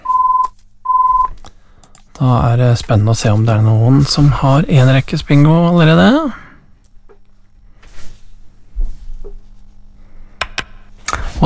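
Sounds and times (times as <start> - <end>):
telephone ringing electronic beeps for an incoming call: 0.0 - 1.3
speech: 2.2 - 6.4.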